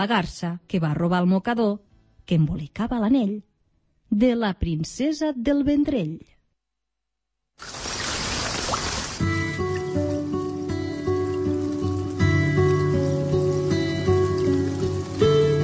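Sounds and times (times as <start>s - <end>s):
speech: 0.0s - 3.5s, 4.1s - 6.3s, 7.6s - 7.9s
water pouring with a bright hissing splash: 7.6s - 15.6s
music with sustained tones: 9.2s - 15.6s.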